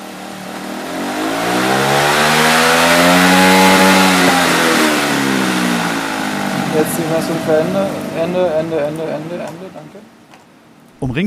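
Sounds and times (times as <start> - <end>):
student-built race car engine revving: 0.0 - 10.3
speech: 7.2 - 10.2, 11.0 - 11.2.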